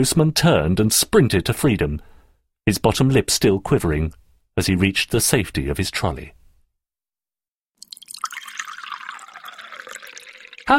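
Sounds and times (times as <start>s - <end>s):
speech: 0.0s - 6.4s
tea pouring into a cup at a breakfast table: 7.8s - 10.7s.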